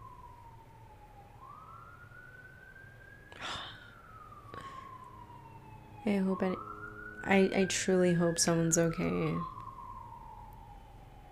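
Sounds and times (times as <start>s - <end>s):
ambulance siren wailing: 0.0s - 11.3s
speech: 6.0s - 9.5s
person's voice: 7.3s - 9.5s.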